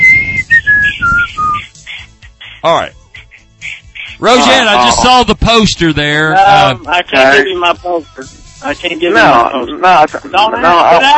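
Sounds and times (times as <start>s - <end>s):
person whistling a short call: 0.0s - 1.7s
speech: 2.6s - 3.0s, 4.2s - 11.1s.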